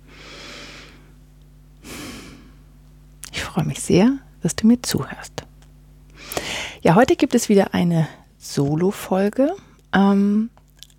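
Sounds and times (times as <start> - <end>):
steady low hum: 0.0 - 10.9
deep breath: 0.1 - 1.2, 1.8 - 2.6, 6.2 - 6.8
speech: 3.6 - 5.4, 6.8 - 10.6.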